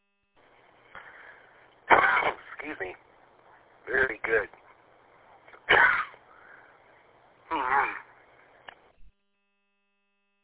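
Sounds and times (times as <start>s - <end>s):
person coughing after a gnat flew down their throat: 1.9s - 2.6s, 5.7s - 6.2s
speech: 2.6s - 3.1s, 3.9s - 4.6s.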